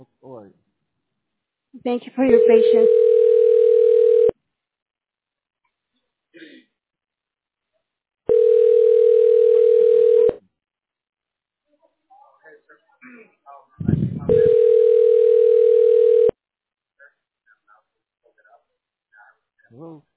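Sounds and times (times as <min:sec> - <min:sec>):
speech: 0:01.8 - 0:03.1
phone ringback tone while calling a tax relief service: 0:02.3 - 0:04.3, 0:08.3 - 0:10.4, 0:14.3 - 0:16.4.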